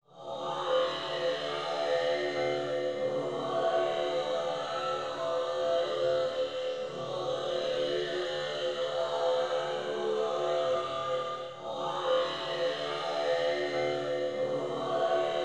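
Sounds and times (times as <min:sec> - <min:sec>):
heavily synthesized chanting: 0:00.1 - 0:15.4.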